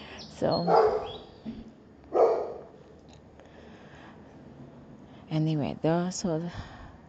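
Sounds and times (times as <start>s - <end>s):
low hum: 0.0s - 7.0s
speech: 0.4s - 1.7s, 5.3s - 6.7s
dog barking: 0.6s - 1.3s, 2.1s - 2.8s.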